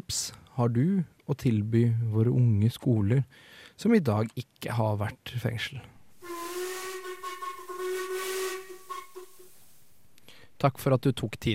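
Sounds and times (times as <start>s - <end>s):
speech: 0.1s - 6.0s, 10.6s - 11.5s
steam train whistle: 6.2s - 9.8s.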